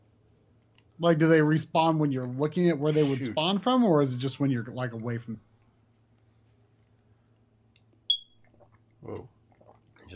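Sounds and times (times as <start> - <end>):
quiet room hum: 0.0 - 8.3
speech: 1.0 - 5.5
smoke detector low-battery chirp: 8.1 - 8.4.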